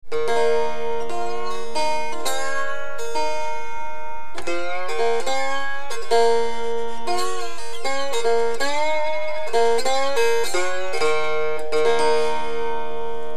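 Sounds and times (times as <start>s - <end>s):
tin guitar: 0.1s - 13.3s.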